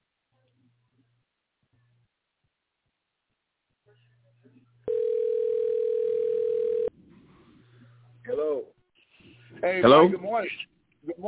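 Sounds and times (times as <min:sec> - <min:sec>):
loud telephone ringing tone: 0:04.9 - 0:06.9
speech: 0:09.6 - 0:11.2.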